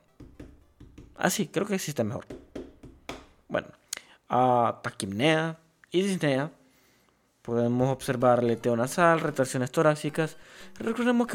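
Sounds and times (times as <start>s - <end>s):
dull tapping imitating chest percussion: 0.0s - 1.2s, 2.2s - 3.4s
speech: 1.2s - 2.4s, 4.3s - 6.6s, 7.4s - 11.3s.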